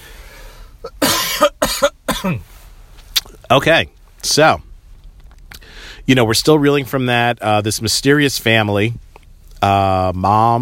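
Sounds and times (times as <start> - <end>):
person coughing harshly from a cold: 0.8 - 2.5
speech: 2.2 - 2.5, 3.5 - 4.7, 6.1 - 10.6.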